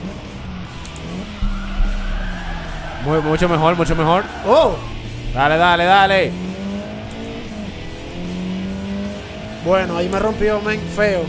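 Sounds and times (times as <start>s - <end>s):
car tire squeal from hard braking and skidding: 0.0s - 7.7s
low car engine drone: 0.0s - 11.2s
speech: 3.0s - 6.4s, 9.6s - 11.2s.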